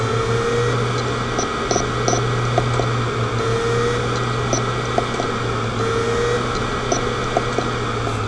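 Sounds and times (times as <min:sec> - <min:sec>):
spin sound: 0:00.1 - 0:08.2.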